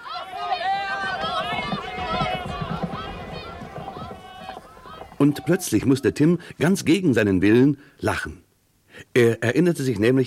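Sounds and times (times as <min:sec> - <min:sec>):
crowd of spectators shouting and cheering at a horse race: 0:00.0 - 0:06.4
speech: 0:05.2 - 0:08.4, 0:09.1 - 0:10.2.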